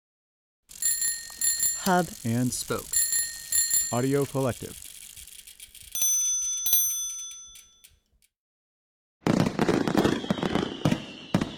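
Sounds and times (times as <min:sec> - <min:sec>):
bright ringing bell-like tones in fireworks sound effect: 0:00.7 - 0:04.8, 0:05.8 - 0:08.0
fireworks crackling pops and bangs for an Independence Day theme: 0:00.7 - 0:06.2, 0:09.2 - 0:11.5
speech: 0:01.8 - 0:03.0, 0:03.9 - 0:04.8.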